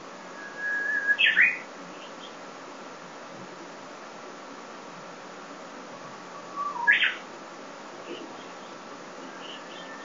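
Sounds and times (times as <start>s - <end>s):
Japanese bush warbler song: 0.0s - 2.7s, 6.0s - 10.0s.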